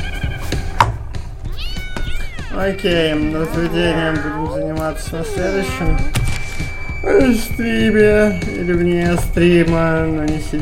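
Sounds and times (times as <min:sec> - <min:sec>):
cat meowing: 0:01.5 - 0:06.2
speech: 0:02.6 - 0:06.2, 0:07.0 - 0:10.6.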